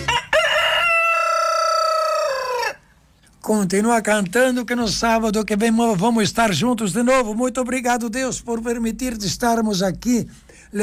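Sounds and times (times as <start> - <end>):
rooster crowing: 0.0 - 3.0
speech: 3.5 - 10.8.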